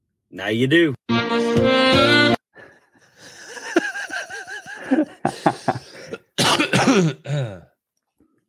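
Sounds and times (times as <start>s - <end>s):
speech: 0.3s - 2.2s, 4.9s - 5.8s
laughter: 2.6s - 6.2s
person coughing: 5.7s - 7.7s
person clearing throat: 6.0s - 7.8s.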